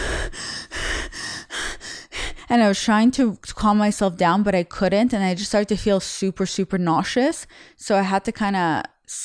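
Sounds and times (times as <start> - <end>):
person imitating heavy out-of-breath panting: 0.0 - 2.5, 7.5 - 7.8
speech: 2.5 - 9.2.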